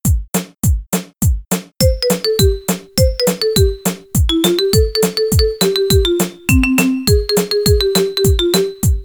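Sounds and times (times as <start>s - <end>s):
Mexican song without bass: 1.8s - 9.0s.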